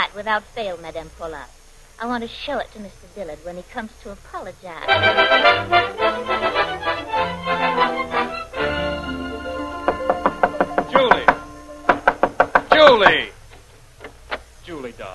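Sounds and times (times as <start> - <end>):
speech: 0.2 - 8.3, 12.9 - 13.4
banging on a lady's bedroom door: 9.8 - 14.5.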